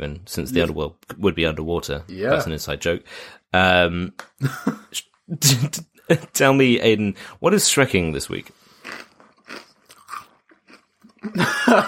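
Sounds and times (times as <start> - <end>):
speech: 0.0 - 9.6, 11.2 - 11.8
someone chewing crunchy corn snack: 8.7 - 11.4
laughter: 11.4 - 11.8.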